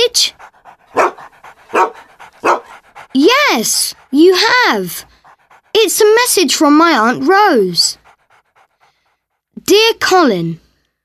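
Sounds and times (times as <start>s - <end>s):
dog huffing and snorting: 0.0s - 9.5s
speech: 0.1s - 0.5s, 3.2s - 5.1s, 5.8s - 8.0s, 9.7s - 10.6s
dog barking: 0.2s - 3.6s.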